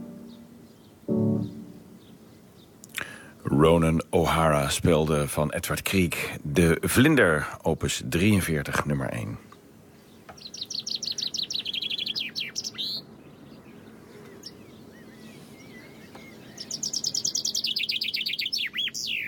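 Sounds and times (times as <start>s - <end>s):
birds singing and twittering: 0.0s - 3.8s, 7.7s - 19.2s
speech: 3.5s - 9.5s.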